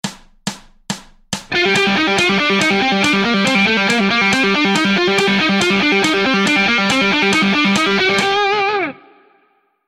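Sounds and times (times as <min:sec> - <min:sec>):
guitar playing: 0:01.5 - 0:09.6.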